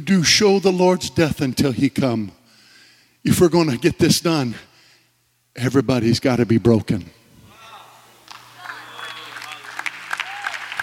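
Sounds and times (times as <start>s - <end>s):
speech: 0.0s - 2.4s, 3.2s - 4.7s, 5.6s - 7.2s
congregation applause: 8.6s - 10.8s.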